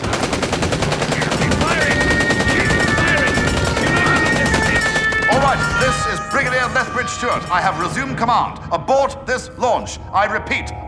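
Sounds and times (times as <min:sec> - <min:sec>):
rapid machine-gun fire in an audio drama battle scene: 0:00.0 - 0:06.0
speech: 0:07.2 - 0:10.8.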